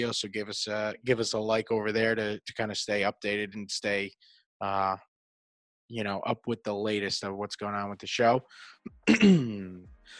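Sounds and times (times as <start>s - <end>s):
speech: 0.0s - 5.1s, 5.9s - 10.1s
throat-clearing cough trailing into a groan: 9.0s - 9.8s.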